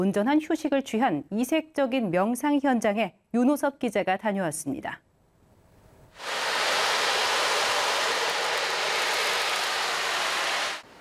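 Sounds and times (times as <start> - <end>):
speech: 0.0 - 5.1
recorded summer sea waves played through speakers in a temple meditation hall: 6.2 - 10.9.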